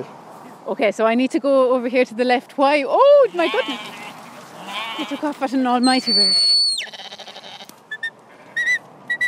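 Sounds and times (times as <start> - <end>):
speech: 0.0 - 4.0, 5.0 - 6.5
sheep bleating in a pen: 3.3 - 5.4, 6.8 - 7.7.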